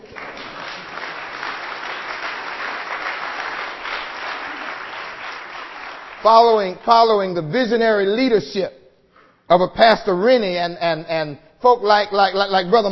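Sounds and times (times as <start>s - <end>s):
audience clapping hands: 0.0s - 7.2s
speech: 6.2s - 8.8s, 9.5s - 12.9s.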